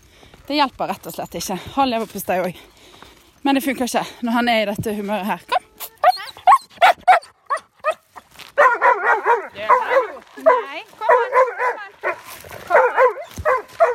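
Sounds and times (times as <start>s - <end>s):
speech: 0.5s - 5.6s
dog whimpering and whining: 5.5s - 8.0s
dog barking: 6.0s - 8.0s, 8.6s - 13.9s.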